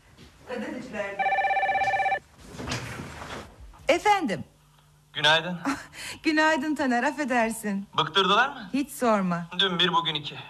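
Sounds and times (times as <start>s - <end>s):
speech: 0.8s - 1.4s, 4.0s - 4.5s, 5.2s - 10.4s
telephone ringing with a trilling electronic bell: 1.2s - 2.2s.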